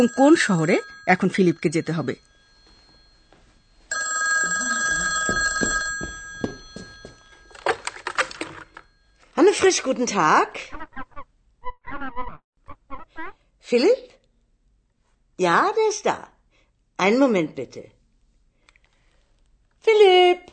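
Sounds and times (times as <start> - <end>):
speech: 0.0 - 2.3, 9.6 - 10.8, 13.7 - 14.1, 15.4 - 16.3, 17.0 - 17.9, 19.8 - 20.5
old-style telephone ringing: 0.0 - 9.9.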